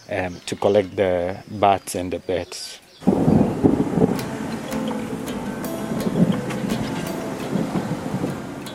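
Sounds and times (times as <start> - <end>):
speech: 0.1 - 3.8
steady rain pattering: 3.0 - 8.7.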